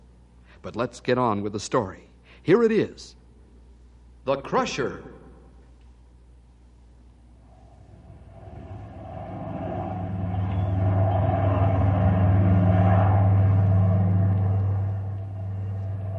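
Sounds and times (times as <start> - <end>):
speech: 0.6 - 3.2, 4.2 - 5.2
large freight plane's engines droning while descending to land: 5.0 - 16.1.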